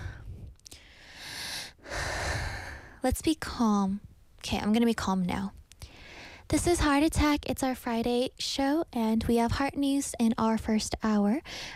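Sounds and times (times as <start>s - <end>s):
person breathing heavily out of breath: 0.0s - 3.0s
speech: 3.0s - 5.6s, 6.5s - 11.7s.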